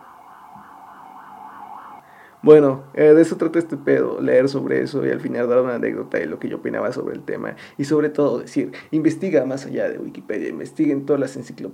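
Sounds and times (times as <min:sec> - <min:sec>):
ambulance siren wailing outside: 0:00.0 - 0:07.1
speech: 0:02.4 - 0:11.7.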